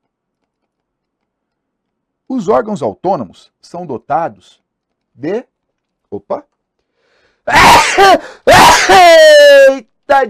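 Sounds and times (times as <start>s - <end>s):
speech: 2.3s - 4.6s, 5.2s - 5.5s, 6.1s - 6.5s, 7.4s - 10.2s
man sneezing loudly: 7.5s - 9.3s.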